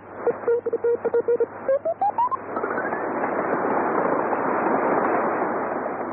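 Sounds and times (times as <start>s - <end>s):
telegraph signal radio interference beeps: 0.0s - 3.1s
loud hissing radio static: 0.0s - 6.1s
radio tone sliding upward: 0.4s - 2.4s.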